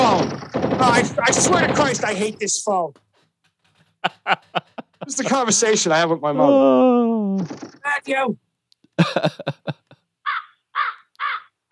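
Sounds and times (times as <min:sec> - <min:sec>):
speech: 0:00.3 - 0:03.0, 0:04.0 - 0:08.4, 0:09.0 - 0:09.8
laughter: 0:03.8 - 0:06.1, 0:09.0 - 0:10.0
crows cawing: 0:10.2 - 0:11.7.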